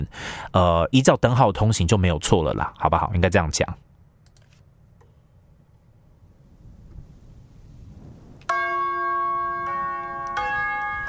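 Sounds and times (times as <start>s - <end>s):
speech: 0.0s - 3.8s
low wind-like rumble: 5.4s - 8.5s
loud resonant bell chimes playing a tune: 8.5s - 11.0s.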